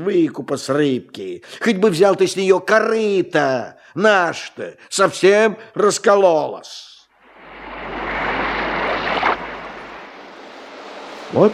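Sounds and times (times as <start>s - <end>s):
speech: 0.0s - 6.9s, 11.3s - 11.5s
slightly rough sea surf rushing: 7.2s - 11.5s.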